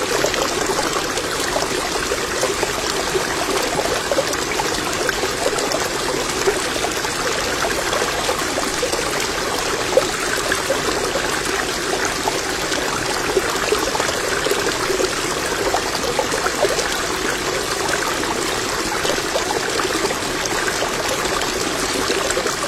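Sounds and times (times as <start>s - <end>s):
shallow fast-flowing stream rushing over stones: 0.0s - 22.6s.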